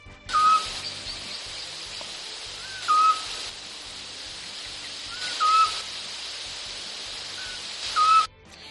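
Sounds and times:
Eurasian scops owl singing whistled hoots: 0:00.3 - 0:01.0, 0:02.6 - 0:03.4, 0:05.1 - 0:05.9, 0:07.4 - 0:08.3
constant background hiss: 0:00.3 - 0:08.3.

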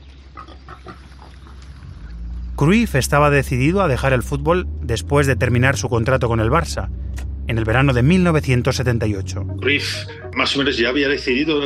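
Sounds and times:
steady low farmyard rumble: 0:00.0 - 0:03.0
pigs grunting and oinking: 0:00.2 - 0:02.1
speech: 0:02.6 - 0:11.6.

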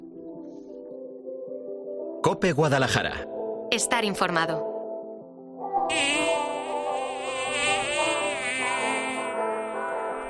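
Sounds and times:
speech: 0:02.2 - 0:04.7
swarm of many bees buzzing: 0:05.9 - 0:10.2.

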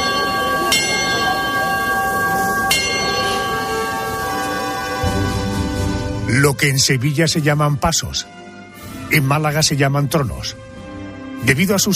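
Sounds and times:
steady murmuring background: 0:00.0 - 0:05.0
bell struck to signal procession bearers: 0:00.0 - 0:06.2
speech: 0:06.4 - 0:08.4, 0:09.1 - 0:10.7, 0:11.4 - 0:11.9.

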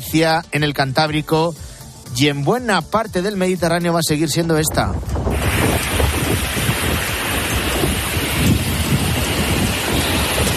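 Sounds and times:
speech: 0:00.1 - 0:05.9
strong wind roaring into the microphone: 0:04.6 - 0:10.5
heavy ocean waves crashing: 0:05.3 - 0:10.5.

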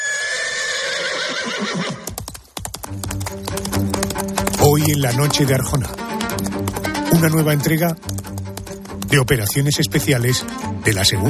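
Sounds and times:
horse neighing: 0:00.0 - 0:02.1
horse hooves clip-clopping: 0:01.6 - 0:11.2
speech: 0:04.2 - 0:06.0, 0:07.1 - 0:08.1, 0:09.1 - 0:11.2.

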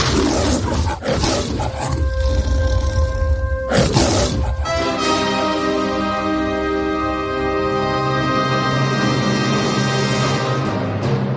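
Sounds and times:
lion roaring, film studio logo roar: 0:00.0 - 0:05.0
sustained orchestral fanfare: 0:04.6 - 0:11.2.

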